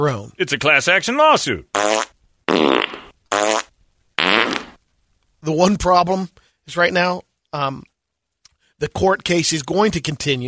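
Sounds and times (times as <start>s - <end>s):
speech: 0.0s - 2.0s, 5.5s - 7.9s, 8.8s - 10.4s
farts: 1.8s - 4.8s.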